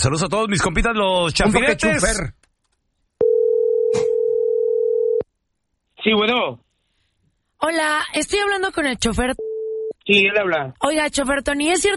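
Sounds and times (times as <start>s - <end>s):
speech: 0.0s - 2.4s, 6.0s - 6.6s, 7.6s - 9.5s, 10.1s - 11.9s
telephone dial tone before a call: 3.2s - 5.2s.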